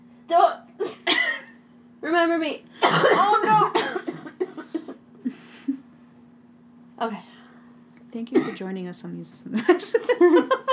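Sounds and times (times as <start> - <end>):
coughing: 0.8 - 1.6, 2.8 - 5.8, 8.4 - 8.6
speech: 2.0 - 3.7, 7.0 - 7.3, 8.1 - 10.6.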